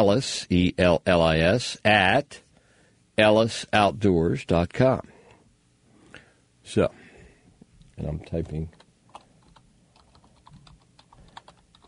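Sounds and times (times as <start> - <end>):
speech: 0.0 - 2.4, 3.2 - 5.1, 6.6 - 7.0, 8.0 - 8.8
typing on a computer keyboard: 8.5 - 11.8.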